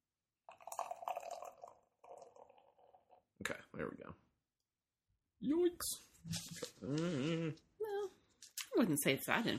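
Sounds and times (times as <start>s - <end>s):
pinkish-red drink poured into a glass: 0.5s - 3.3s
speech: 3.5s - 4.3s, 5.4s - 7.7s, 8.8s - 9.5s.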